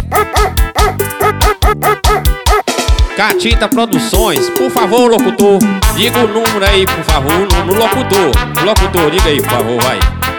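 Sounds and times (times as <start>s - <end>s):
dog barking: 0.0s - 2.7s
speech: 3.2s - 10.2s.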